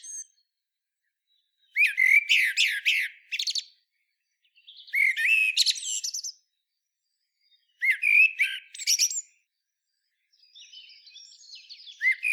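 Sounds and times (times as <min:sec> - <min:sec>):
common blackbird Turdus merula song: 0:00.0 - 0:12.3.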